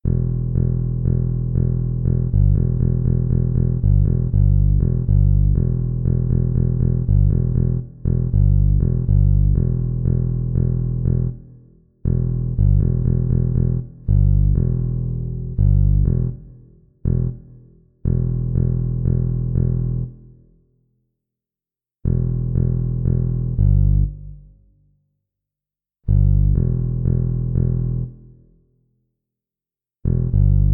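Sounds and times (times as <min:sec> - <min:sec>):
funk bass guitar: 0:00.0 - 0:11.5, 0:12.1 - 0:17.5, 0:18.1 - 0:20.2, 0:22.1 - 0:24.3, 0:26.1 - 0:28.2, 0:30.1 - 0:30.7.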